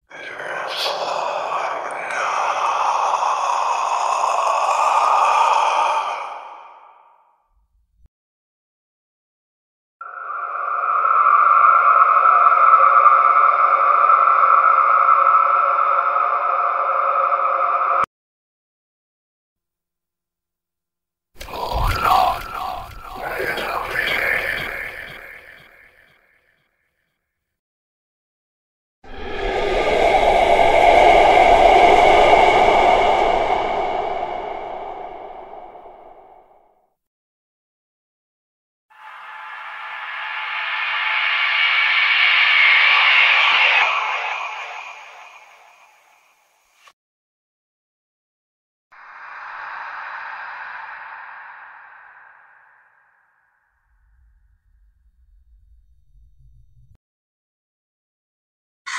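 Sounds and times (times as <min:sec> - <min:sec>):
creepy horror whisper: 0:00.0 - 0:07.3, 0:10.0 - 0:18.1, 0:21.4 - 0:26.2, 0:29.1 - 0:36.6, 0:39.0 - 0:46.9, 0:49.0 - 0:57.0.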